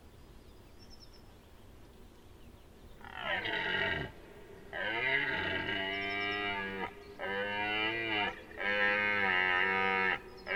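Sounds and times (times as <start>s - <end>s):
deer giving long moaning tonal calls: 3.0s - 10.5s.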